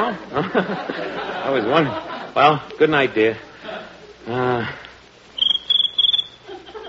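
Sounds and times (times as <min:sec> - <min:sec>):
speech: 0:00.0 - 0:03.5, 0:04.2 - 0:04.8
laughter: 0:00.0 - 0:04.6, 0:06.4 - 0:06.8
brief murmured voice: 0:03.6 - 0:04.9
cricket chirping in pulsed bursts: 0:05.4 - 0:06.8.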